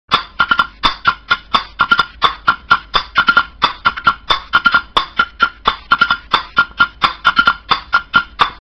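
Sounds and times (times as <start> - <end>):
mortar and pestle: 0.1 - 8.5.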